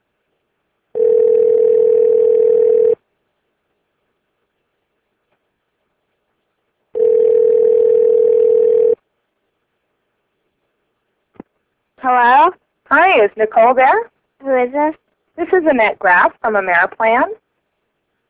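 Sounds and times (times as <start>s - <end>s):
low-pitched telephone ringback tones: 1.0s - 3.0s, 7.0s - 9.0s
speech: 13.2s - 17.4s.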